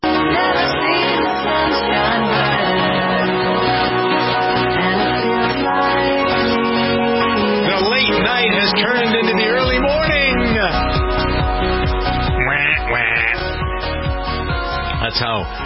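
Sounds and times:
dense steady musical backdrop: 0.0s - 15.6s
duck quacking: 12.3s - 13.6s
speech: 15.3s - 15.6s.

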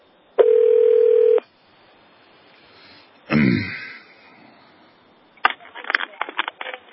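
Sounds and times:
steady electronic phone line tone: 0.4s - 1.4s.

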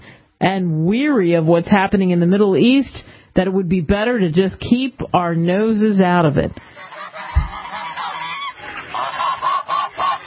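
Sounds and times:
speech: 0.4s - 6.7s
honking duck calls sound effect: 6.6s - 10.2s.

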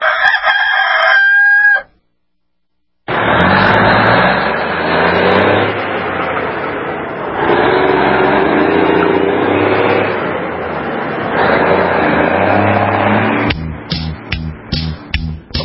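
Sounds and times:
rooster crowing: 0.0s - 2.0s
steady broad roar: 3.1s - 15.5s.

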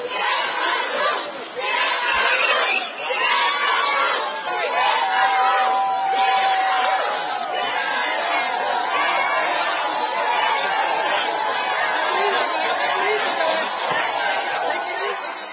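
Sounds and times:
large crowd of protesters chanting: 0.0s - 15.5s
high whoops: 4.8s - 7.6s.

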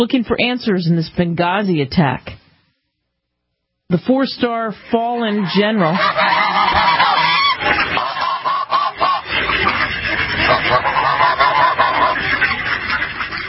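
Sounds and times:
speech: 0.0s - 2.4s, 3.9s - 7.9s
chorus of ducks quacking: 4.8s - 13.4s.

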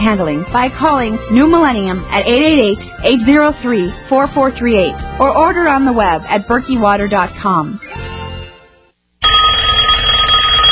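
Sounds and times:
speech: 0.0s - 7.8s
telephone bell ringing: 9.2s - 10.7s.

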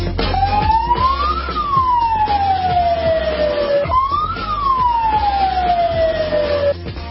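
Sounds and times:
air raid siren wailing: 0.2s - 6.8s.

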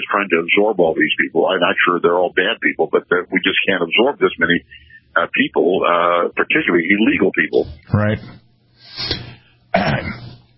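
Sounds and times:
speech: 0.2s - 8.4s, 9.0s - 10.4s
person clearing throat: 9.7s - 10.4s.

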